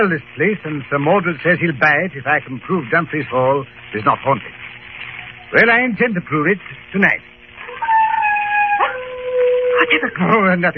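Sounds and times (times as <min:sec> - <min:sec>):
speech: 0:00.0 - 0:04.6, 0:05.5 - 0:07.3, 0:09.9 - 0:10.7
wild dogs baying and howling on a moor: 0:07.6 - 0:10.4.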